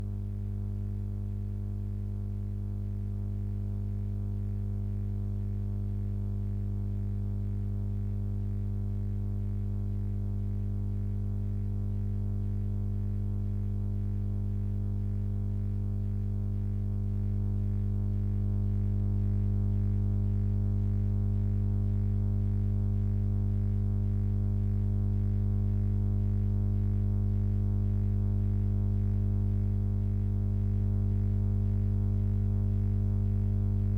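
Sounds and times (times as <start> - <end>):
50 Hz electric hum buzz: 0.0 - 33.9.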